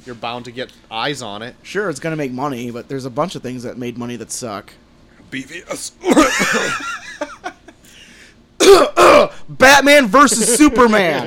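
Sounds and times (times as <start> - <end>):
speech: 0.0 - 7.3, 8.7 - 11.2
person coughing: 6.0 - 6.7, 8.6 - 9.3
laughter: 6.0 - 7.9, 10.2 - 11.2
person breathing: 7.8 - 8.4.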